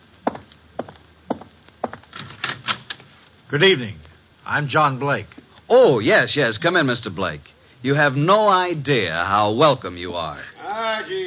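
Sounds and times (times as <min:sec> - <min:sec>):
footsteps on a wooden floor: 0:00.2 - 0:02.1
speech: 0:03.5 - 0:10.5.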